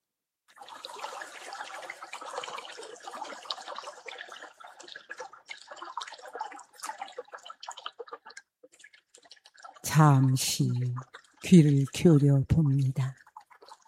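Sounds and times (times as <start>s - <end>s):
stream water flowing and babbling: 0.6s - 7.3s, 9.6s - 13.8s
speech: 10.0s - 13.2s.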